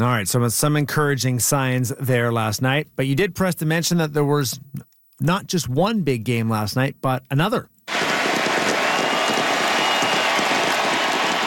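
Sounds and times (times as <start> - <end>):
speech: 0.0 - 7.7
huge stadium crowd roaring: 7.9 - 11.4.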